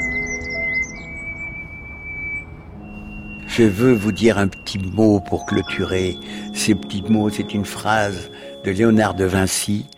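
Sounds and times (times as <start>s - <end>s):
constant high whistle-like tone: 0.0s - 7.8s
small treecreepers singing outdoors: 0.0s - 9.9s
speech: 3.6s - 9.9s.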